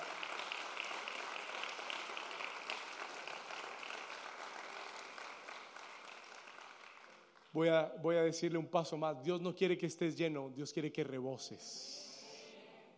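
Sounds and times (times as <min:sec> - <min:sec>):
crowd applauding: 0:00.0 - 0:07.6
speech: 0:07.6 - 0:12.1.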